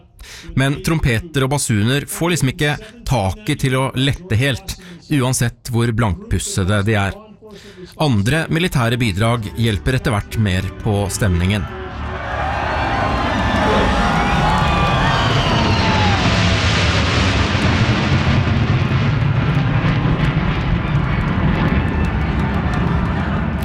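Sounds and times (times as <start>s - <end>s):
speech: 0.4s - 11.8s
B-2 stealth bombers flying in formation overhead at an outdoor event: 11.6s - 23.6s.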